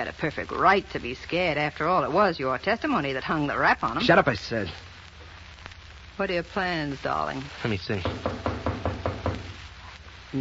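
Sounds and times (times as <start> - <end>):
speech: 0.0 - 4.9, 6.2 - 8.3
faint room hum: 0.0 - 10.3
knocking on a wooden door: 8.0 - 9.6.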